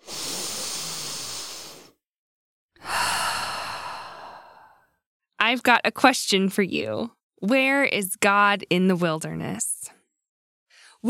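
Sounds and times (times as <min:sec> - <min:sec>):
deep breath in and out: 0:00.0 - 0:02.0, 0:02.8 - 0:05.0
speech: 0:05.5 - 0:09.8.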